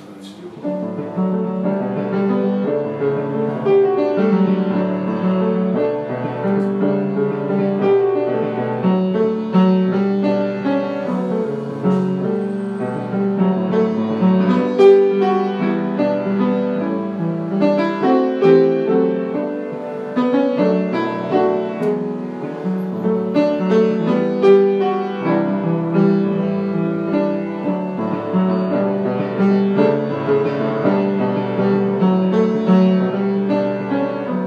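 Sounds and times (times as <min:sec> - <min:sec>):
piano melody: 0:00.0 - 0:34.4.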